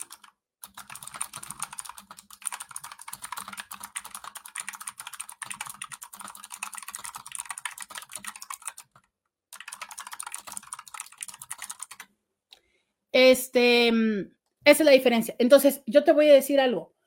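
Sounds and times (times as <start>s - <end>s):
keyboard typing: 0.0s - 12.1s
speech: 13.2s - 16.9s.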